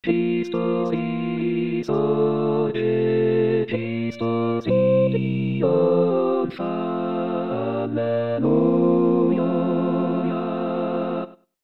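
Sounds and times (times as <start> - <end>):
choir singing: 0.0 - 11.5.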